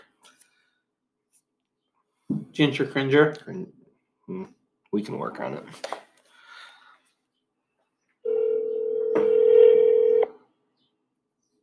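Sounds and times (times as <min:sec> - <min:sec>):
speech: 0:02.6 - 0:06.0
telephone call ringing tone as steady electronic hum: 0:08.3 - 0:10.4.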